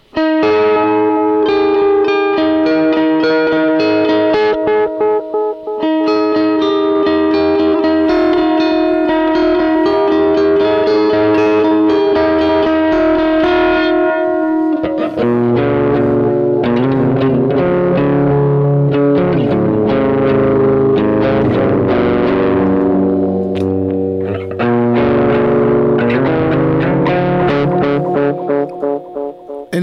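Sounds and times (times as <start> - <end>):
electric guitar through an analog delay pedal with tap tempo: 0.0 - 29.8.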